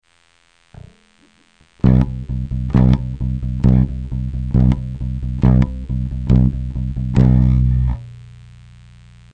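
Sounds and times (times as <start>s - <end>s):
bass accent played with the right hand: 1.8s - 8.7s.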